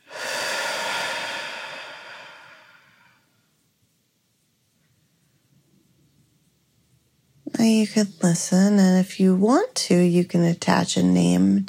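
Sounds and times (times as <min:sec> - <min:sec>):
person breathing out during a relaxation exercise: 0:00.0 - 0:03.3
speech: 0:07.6 - 0:11.6.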